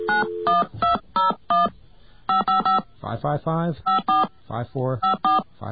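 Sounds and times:
telephone keypad DTMF dialing tones: 0.0 - 1.7, 2.3 - 2.8, 3.9 - 4.3, 5.0 - 5.4.

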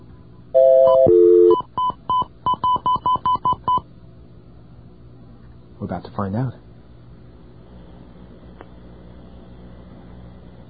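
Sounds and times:
touch-tone telephone keypad dialing a number: 0.6 - 3.8
speech: 5.9 - 6.6.

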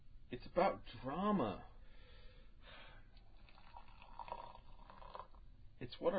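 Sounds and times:
speech: 0.3 - 1.7, 5.8 - 6.1
tea pouring slowly into a cup: 3.2 - 5.4.

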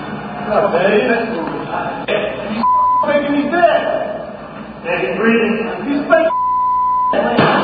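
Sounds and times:
loud busy recorded speech: 0.5 - 4.2, 4.8 - 6.4, 7.1 - 7.6
steady pure censor bleeps: 2.6 - 3.2, 6.3 - 7.3.

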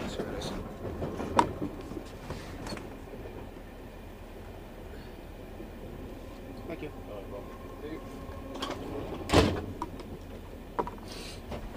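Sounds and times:
steady rumbling background: 0.0 - 11.7
compartment door yanked open during a ticket check: 8.6 - 9.9.

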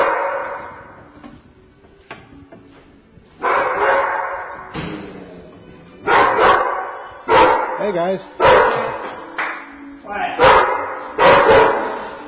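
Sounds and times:
dogs barking loudly in a kennel: 0.0 - 1.0, 3.4 - 4.7, 6.0 - 9.2, 10.3 - 12.2
speech: 7.9 - 8.8.

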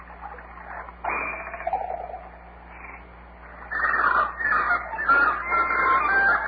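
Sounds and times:
several birds squawking and clucking with chicken-like calls: 0.0 - 6.4.

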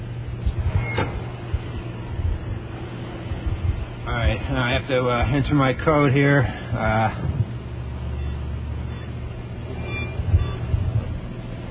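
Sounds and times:
outdoor rumble: 0.0 - 11.6
steady low machine hum: 0.0 - 11.6
small door of an outdoor cash machine sliding open in wet weather: 0.7 - 1.4
speech: 4.3 - 7.3.

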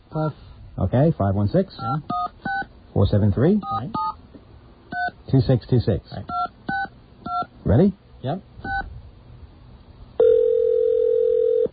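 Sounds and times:
speech: 0.1 - 2.2, 3.0 - 4.1, 5.3 - 6.4, 7.7 - 8.5
telephone ringing while calling a voicemail system: 10.2 - 11.7.

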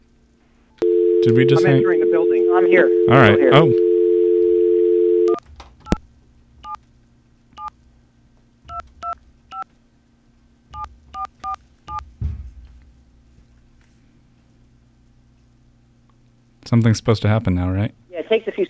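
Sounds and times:
telephone dial tone: 0.8 - 5.4
speech: 1.2 - 3.9, 16.8 - 18.6
telephone keypad tones: 3.8 - 6.0, 8.7 - 9.6.

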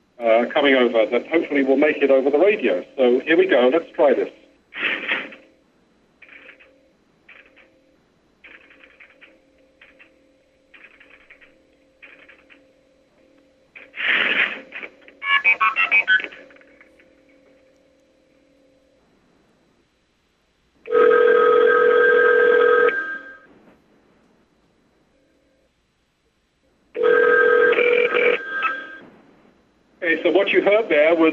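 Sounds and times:
faint steady hum: 0.0 - 31.3
speech: 0.2 - 4.4
called phone on the 3 crossbar ringing: 6.2 - 19.0, 20.9 - 23.5, 27.0 - 29.0.

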